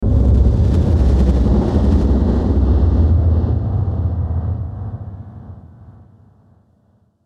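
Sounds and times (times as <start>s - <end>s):
dark sweeper delay effect: 0.0s - 5.9s.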